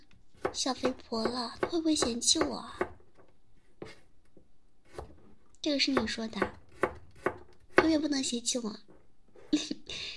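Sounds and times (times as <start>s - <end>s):
knife chopping vegetables on a cutting board: 0.4s - 3.0s, 4.8s - 5.3s, 5.9s - 8.0s
speech: 0.6s - 2.8s, 5.6s - 6.6s, 7.9s - 8.9s.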